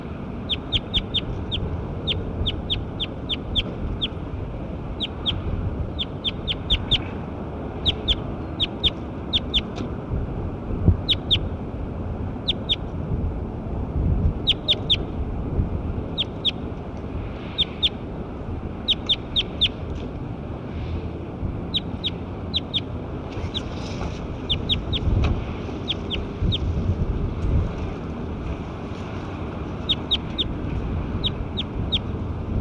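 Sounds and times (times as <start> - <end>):
constant low rumble: 0.0 - 32.5
bird calling with sharp high-pitched chirps: 0.4 - 4.2, 5.0 - 7.2, 7.8 - 9.8, 11.0 - 11.5, 12.4 - 12.8, 14.4 - 15.1, 16.2 - 16.6, 18.8 - 19.8, 21.7 - 23.8, 24.4 - 25.1, 25.8 - 26.7, 29.8 - 30.5, 31.2 - 32.1.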